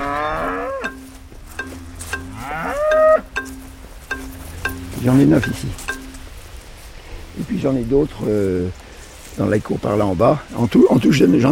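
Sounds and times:
Jersey dairy cows mooing loudly on a farm: 0:00.0 - 0:06.2
soft farmyard noise: 0:00.0 - 0:09.4
faint clanking on a farm: 0:00.8 - 0:06.9
speech: 0:05.0 - 0:05.8, 0:07.5 - 0:08.8, 0:09.4 - 0:11.5.

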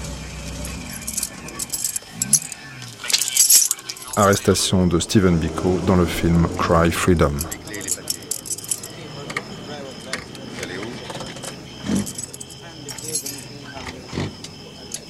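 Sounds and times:
low voices murmuring: 0:00.0 - 0:15.0
keys jangling and scraping against a car trunk lock: 0:00.5 - 0:04.5, 0:07.2 - 0:13.8
speech: 0:04.2 - 0:07.6.

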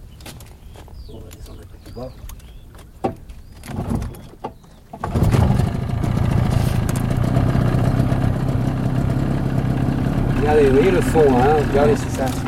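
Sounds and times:
faint birds: 0:00.0 - 0:05.1, 0:07.2 - 0:12.4
speech: 0:01.1 - 0:02.3, 0:10.5 - 0:12.4
boat engine cranking, catching and idling: 0:05.0 - 0:12.4.

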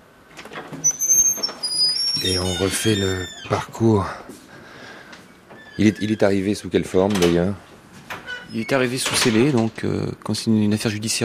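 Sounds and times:
door hinges squealing as door is opened: 0:00.5 - 0:03.8, 0:05.3 - 0:07.4, 0:08.1 - 0:09.7
speech: 0:02.2 - 0:04.3, 0:05.8 - 0:07.6, 0:08.5 - 0:11.2.

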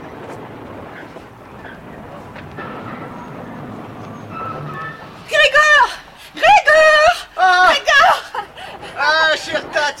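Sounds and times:
train pulling into a station: 0:00.0 - 0:09.9
train wheels squealing: 0:00.0 - 0:09.9.

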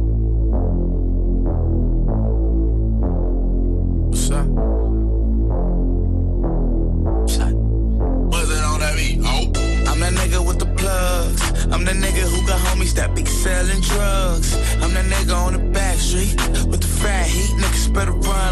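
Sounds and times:
hip-hop instrumental intro with deep throbbing bassline: 0:00.0 - 0:18.5
speech: 0:13.6 - 0:18.5.

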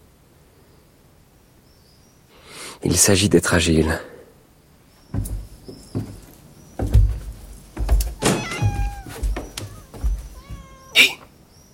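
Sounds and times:
speech: 0:02.8 - 0:04.1
cat meowing: 0:08.1 - 0:11.3.

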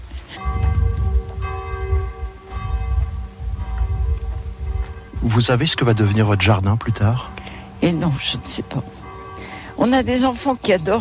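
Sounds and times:
church bell tolling noon: 0:00.0 - 0:10.9
low rumbling background: 0:00.4 - 0:08.2
speech: 0:05.3 - 0:09.0, 0:09.8 - 0:10.9.

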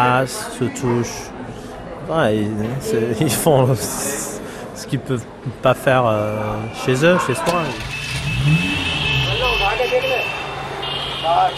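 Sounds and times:
speech: 0:00.0 - 0:08.8, 0:11.3 - 0:11.5
car engine revving: 0:07.5 - 0:11.2.

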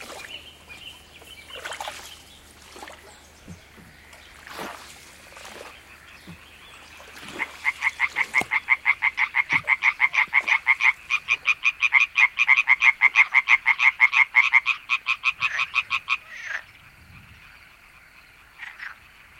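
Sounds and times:
faint trickling water: 0:00.0 - 0:11.8
frogs croaking: 0:00.0 - 0:19.3.

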